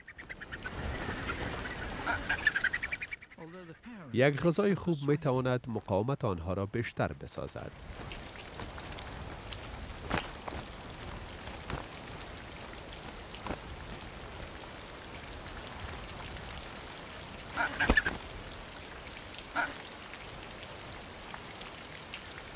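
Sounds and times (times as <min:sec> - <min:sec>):
steady cold rain pattering on surfaces: 0:00.0 - 0:03.3, 0:07.2 - 0:22.5
faint bird calls: 0:00.0 - 0:04.1, 0:17.5 - 0:18.2, 0:19.5 - 0:19.9
water drips and splashes: 0:00.2 - 0:03.2, 0:07.6 - 0:22.5
speech: 0:03.8 - 0:08.2.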